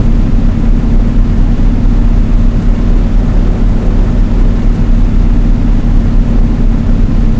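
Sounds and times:
Blenheim aircraft engines heard in cockpit: 0.0 - 7.3.

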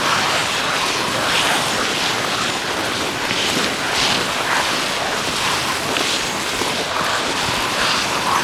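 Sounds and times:
snowmobile on surface ice: 0.0 - 8.4.

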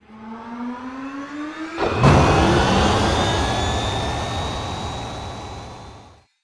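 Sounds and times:
aircraft APU AI9V starting: 1.8 - 6.2.

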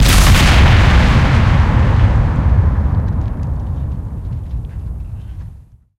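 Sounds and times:
torpedo explosion: 0.0 - 5.6.

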